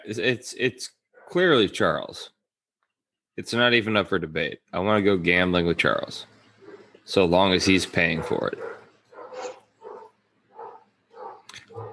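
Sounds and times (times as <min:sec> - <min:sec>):
speech: 0:00.0 - 0:02.4, 0:03.4 - 0:06.3, 0:07.1 - 0:08.8
dogs barking: 0:06.6 - 0:07.0, 0:07.9 - 0:11.9.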